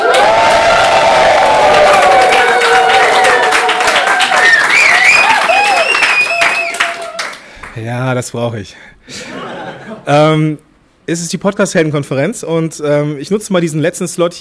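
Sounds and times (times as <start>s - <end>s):
large conference audience clapping: 0.0s - 7.9s
speech: 8.1s - 9.3s, 10.1s - 14.3s
laughter: 9.1s - 10.1s.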